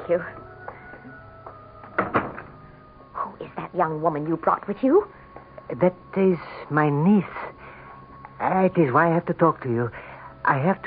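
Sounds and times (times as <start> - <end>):
faint steady room hum: 0.0 - 10.8
speech: 0.1 - 0.4, 3.7 - 7.4, 8.4 - 10.8
door opening with clunks of the latch and handle: 1.9 - 2.6.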